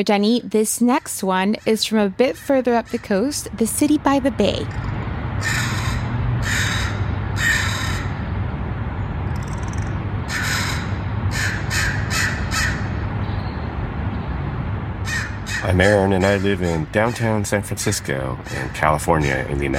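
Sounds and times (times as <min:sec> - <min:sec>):
speech: 0:00.0 - 0:05.8, 0:15.6 - 0:19.7
low hum of city noise: 0:00.0 - 0:19.7
crows cawing in the morning: 0:04.7 - 0:08.3, 0:10.3 - 0:13.0, 0:15.0 - 0:19.5.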